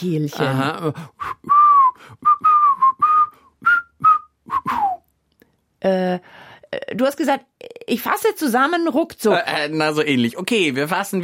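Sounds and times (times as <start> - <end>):
speech: 0.0 - 2.2, 5.8 - 11.2
person whistling a quick playful tune: 1.2 - 5.0.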